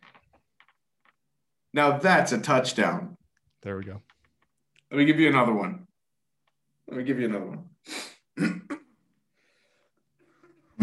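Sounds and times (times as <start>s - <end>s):
speech: 1.7s - 4.1s, 4.9s - 5.9s, 6.9s - 8.6s
person clearing throat to warm up voice: 8.4s - 9.0s.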